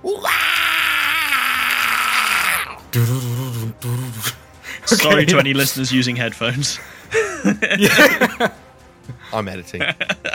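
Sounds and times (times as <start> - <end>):
man screaming voicing a creature: 0.0 - 3.0
shorter, lower vocal burst from a man: 2.6 - 4.4
speech: 2.9 - 10.3
laughter: 4.8 - 5.7, 7.1 - 8.6, 9.7 - 10.3.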